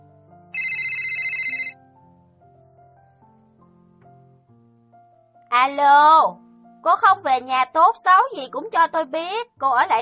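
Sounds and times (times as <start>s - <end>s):
phone ringtone for an incoming call: 0.5s - 1.8s
speech: 5.6s - 10.0s.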